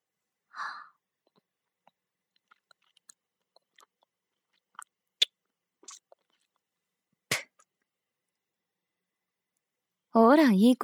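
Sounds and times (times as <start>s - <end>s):
soft breath: 0.5s - 1.0s
person chewing and eating food: 1.3s - 6.8s.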